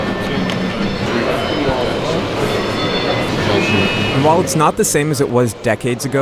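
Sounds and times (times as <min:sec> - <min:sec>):
overlapping voices on a stock exchange trading floor: 0:00.4 - 0:05.3
thin electronic beeping alert tones on a trading floor: 0:02.6 - 0:04.8
speech: 0:04.2 - 0:06.2.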